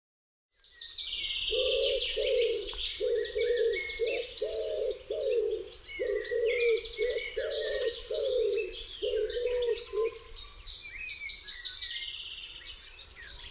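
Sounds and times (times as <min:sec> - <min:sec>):
lively high songbird chatter: 0:00.6 - 0:13.4
common wood pigeon cooing: 0:01.5 - 0:10.3.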